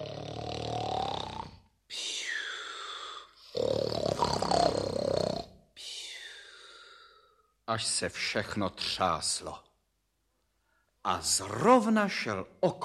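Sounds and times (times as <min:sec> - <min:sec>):
person imitating a wolf snoring: 0:00.0 - 0:01.7, 0:02.3 - 0:05.5
speech: 0:07.7 - 0:09.7, 0:11.1 - 0:12.8.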